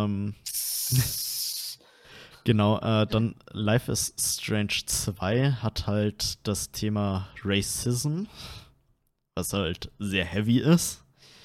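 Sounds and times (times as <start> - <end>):
speech: 0.0 - 1.2, 2.4 - 8.6, 9.4 - 11.0
bright electronic hiss through online voice chat with fluctuating connection: 0.5 - 1.8.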